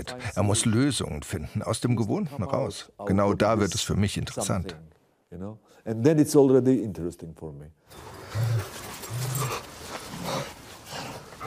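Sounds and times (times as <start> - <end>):
speech: 0.0 - 9.3
dog panting: 8.6 - 11.4.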